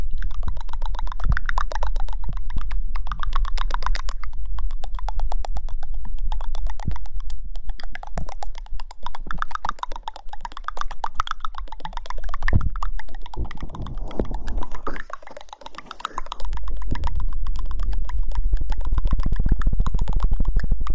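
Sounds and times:
wet mouth and tongue clicks and smacks: 0.0 - 20.9
low rumble: 12.5 - 20.9.

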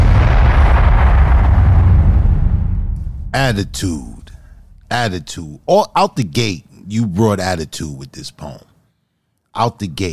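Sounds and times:
bomb explosion sound effect: 0.0 - 5.1
speech: 3.3 - 4.2, 4.9 - 8.7, 9.6 - 10.1.

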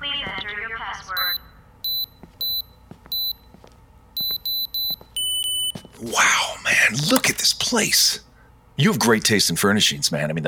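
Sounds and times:
electronic alarm beeping in high-pitched double tones: 1.2 - 3.4, 4.2 - 5.8
speech: 6.0 - 10.4.

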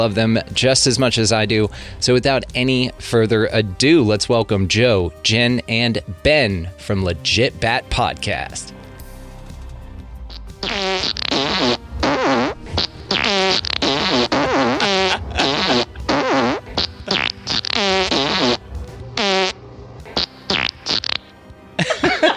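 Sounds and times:
speech: 0.0 - 8.8
fart sound effects: 10.3 - 18.6, 19.2 - 21.3
laughter: 14.6 - 16.1, 21.8 - 22.3.

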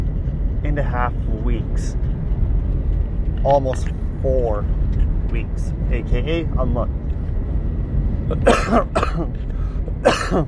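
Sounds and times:
low rumble: 0.0 - 10.4
speech: 0.6 - 2.1, 3.4 - 7.0, 8.3 - 10.4
harsh coughs with a throat-clearing quality: 8.3 - 9.4, 10.0 - 10.4.

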